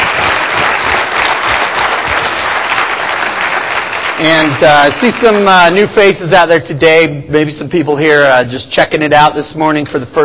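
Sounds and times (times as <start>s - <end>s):
audience applause: 0.0s - 5.8s
speech: 4.2s - 10.2s.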